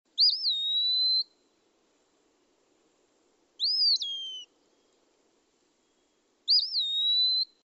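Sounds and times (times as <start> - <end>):
Eastern Wood Peewee calling: 0.1 - 1.5, 3.6 - 5.0, 5.8 - 7.6.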